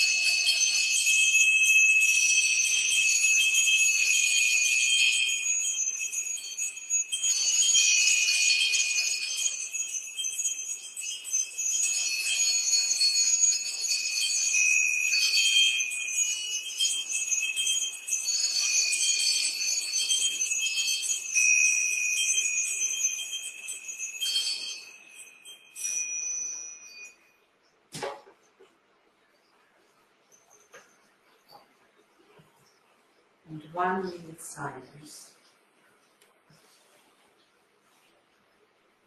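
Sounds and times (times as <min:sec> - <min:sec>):
many bells ringing together: 0:00.0 - 0:27.4
speech: 0:33.7 - 0:35.3.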